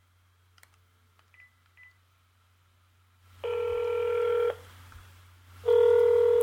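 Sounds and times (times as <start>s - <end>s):
electronic ringback tone of an outgoing phone call: 3.4s - 4.6s, 5.6s - 6.4s.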